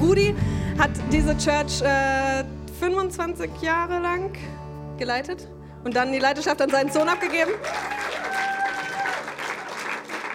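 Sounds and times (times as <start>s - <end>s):
speech: 0.1s - 8.2s
audience applause in a church: 6.7s - 10.3s.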